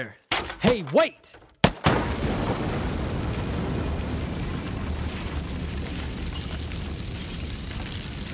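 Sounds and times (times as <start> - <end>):
speech: 0.0 - 1.4
rumbling debris and crumbling rubble: 0.2 - 8.3
bomb explosion blasting through door and wall: 1.8 - 8.3.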